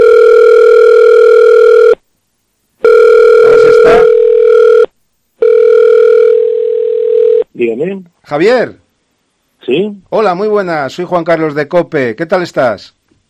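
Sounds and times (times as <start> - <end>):
telephone ringback tone as a radio host phones a guest: 0.0 - 2.0, 2.8 - 7.4
speech: 7.7 - 8.8, 9.7 - 13.0.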